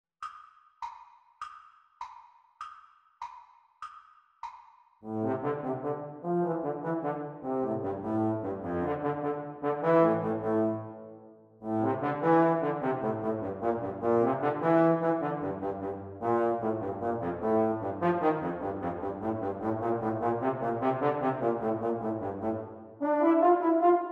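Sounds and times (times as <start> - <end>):
trombone playalong music: 5.0 - 11.0, 11.7 - 24.1.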